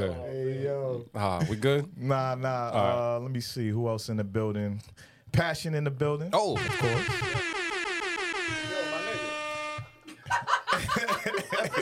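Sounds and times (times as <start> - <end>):
speech: 0.0 - 7.5
loud sustained air horn blaring: 6.6 - 10.1
people talking and laughing: 10.1 - 11.8.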